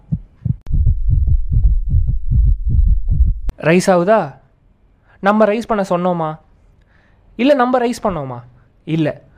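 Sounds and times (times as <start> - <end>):
deep thumping heartbeat sound effect: 0.0 - 3.5
speech: 3.6 - 4.4, 5.2 - 6.4, 7.4 - 9.2.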